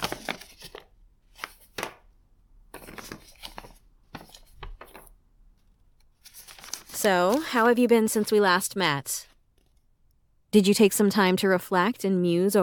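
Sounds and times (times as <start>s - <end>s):
paper rustling and crinkling: 0.0s - 2.1s, 2.7s - 8.4s
speech: 7.0s - 9.3s, 10.5s - 12.6s.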